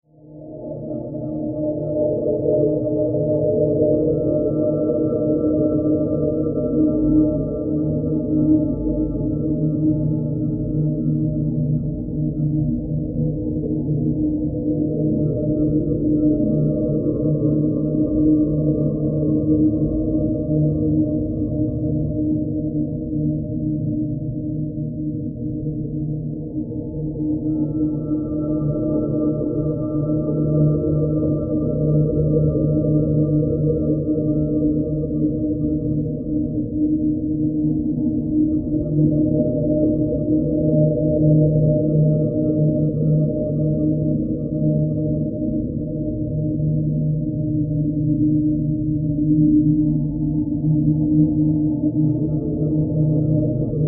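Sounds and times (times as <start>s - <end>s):
ethereal alien sci-fi drone: 0.2s - 53.8s.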